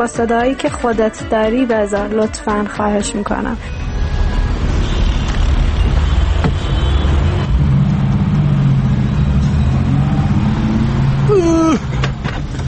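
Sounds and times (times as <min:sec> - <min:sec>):
speech: 0:00.0 - 0:03.9
rumble of car engines in street traffic: 0:02.6 - 0:12.6
car engine revving: 0:03.9 - 0:12.6.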